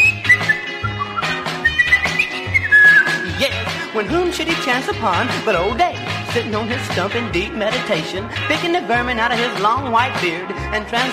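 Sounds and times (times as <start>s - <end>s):
person happily whistling a bright cheerful tune: 0.0s - 3.6s
bouncy instrumental backing with steady bass: 0.0s - 11.1s
speech: 4.0s - 11.1s.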